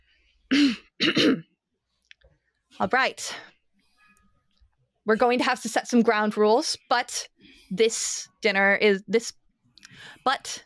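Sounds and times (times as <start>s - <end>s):
speech: 0.5s - 1.5s, 2.8s - 3.5s, 5.0s - 10.6s
woman clearing her throat approaching a breakfast table: 0.5s - 1.5s.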